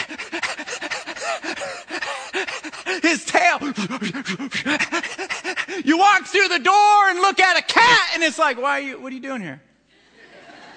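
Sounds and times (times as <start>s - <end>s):
human voice imitating an excited dog panting: 0.0s - 5.8s
speech: 3.0s - 9.7s
laughter: 10.0s - 10.7s.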